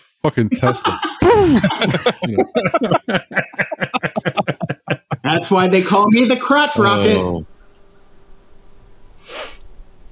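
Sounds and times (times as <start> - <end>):
speech: 0.2 - 3.6, 5.4 - 7.6
laughter: 0.3 - 7.4
crickets chirping: 5.9 - 10.1
constant high insect drone: 6.8 - 10.1.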